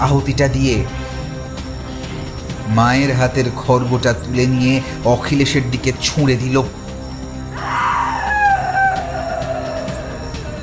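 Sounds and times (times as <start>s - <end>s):
speech: 0.0s - 1.2s, 2.7s - 6.8s
steady low drone: 0.0s - 10.6s
woman's loud anguished scream filling a room: 7.5s - 10.6s.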